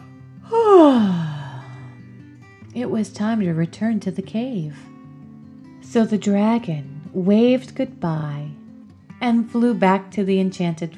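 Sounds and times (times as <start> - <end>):
narrator imitating a yawn: 0.5 - 1.9
speech: 2.8 - 4.9, 5.9 - 8.6, 9.2 - 10.9.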